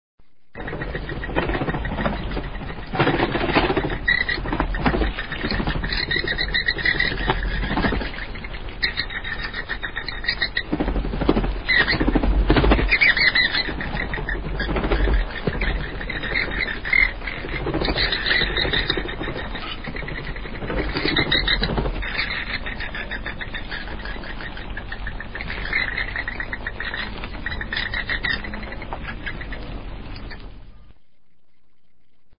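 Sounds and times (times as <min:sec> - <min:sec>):
bats: 0:00.6 - 0:32.0.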